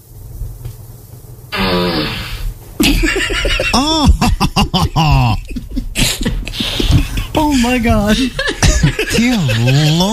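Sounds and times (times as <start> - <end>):
low hum: 0.0 - 10.1
fart sound effect from a smart speaker: 1.5 - 2.6
laughter: 2.8 - 10.1
speech: 3.8 - 5.4, 7.6 - 10.1.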